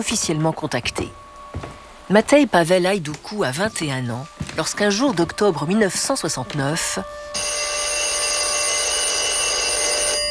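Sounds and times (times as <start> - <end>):
speech: 0.0 - 7.7
telephone bell ringing: 7.4 - 10.2.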